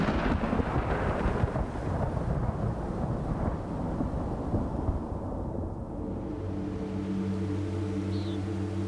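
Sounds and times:
heavy rolling thunder in a thunderstorm: 0:00.0 - 0:06.3
rain-like hiss: 0:00.0 - 0:08.8.

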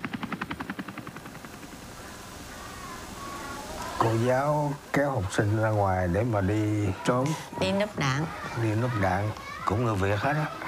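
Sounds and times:
UH-1 military helicopter rotor thumping: 0:00.0 - 0:04.2
speech: 0:04.0 - 0:10.6.

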